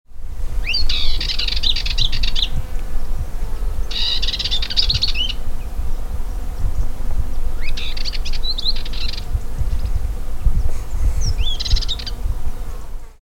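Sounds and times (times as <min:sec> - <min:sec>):
Dartford warbler singing: 0:00.6 - 0:02.6, 0:03.8 - 0:12.8.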